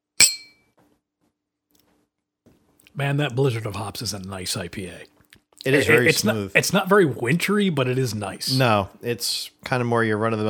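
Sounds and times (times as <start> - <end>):
two beer glasses of IPA clinking in a toast: 0.2 - 0.6
speech: 3.0 - 10.4.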